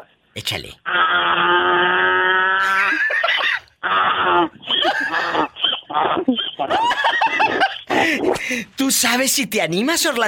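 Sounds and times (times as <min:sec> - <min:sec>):
speech: 0:00.4 - 0:01.6, 0:04.4 - 0:10.2
person imitating donkey bray: 0:00.8 - 0:03.0, 0:03.8 - 0:06.7
laughter: 0:04.6 - 0:08.2.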